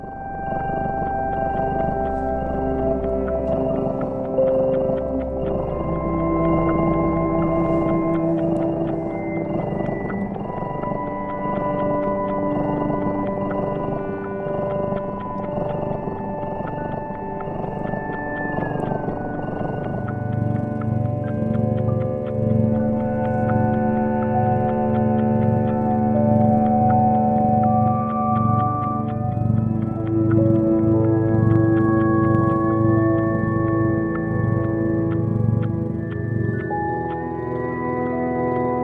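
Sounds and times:
low throbbing purr-like rumble: 0.0s - 36.6s
slow sustained sliding tones of music composed for cats: 0.0s - 38.8s.

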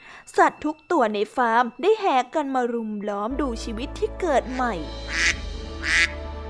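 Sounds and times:
speech: 0.2s - 5.0s
duck quacking excitedly: 5.1s - 6.2s.

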